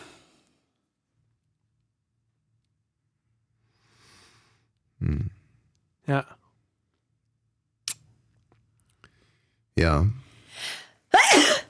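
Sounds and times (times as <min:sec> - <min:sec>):
speech: 0:06.1 - 0:06.4, 0:09.8 - 0:10.2
single sneeze: 0:11.1 - 0:11.6.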